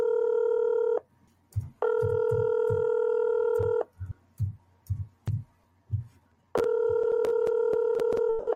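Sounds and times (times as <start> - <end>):
electronic phone ring tone on the line: 0.0 - 1.0, 1.8 - 3.9, 6.6 - 8.5
soft low thumps: 1.5 - 2.9, 3.5 - 6.2.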